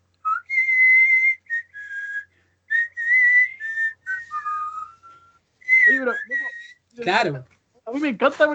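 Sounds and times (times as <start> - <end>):
person whistling a short melodic tune: 0.3 - 6.8
speech: 7.0 - 8.5.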